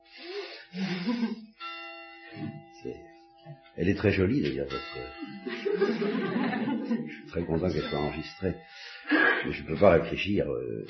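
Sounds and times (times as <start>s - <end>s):
bells ringing: 0.7s - 10.8s
laughter: 0.8s - 1.5s, 5.2s - 8.2s, 9.1s - 9.7s
speech: 0.8s - 1.5s, 3.8s - 6.3s, 7.1s - 10.8s
loud clanging bell strikes: 1.6s - 8.6s.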